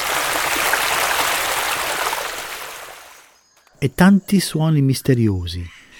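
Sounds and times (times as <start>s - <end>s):
water of a stream running over stones: 0.0s - 3.4s
speech: 3.8s - 5.8s.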